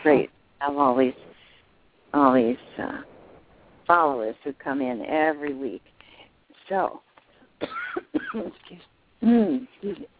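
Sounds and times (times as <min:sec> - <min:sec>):
speech: 0:00.0 - 0:01.3, 0:02.1 - 0:03.1, 0:03.9 - 0:05.9, 0:06.7 - 0:10.1
person coughing after swallowing the wrong way: 0:07.6 - 0:08.5.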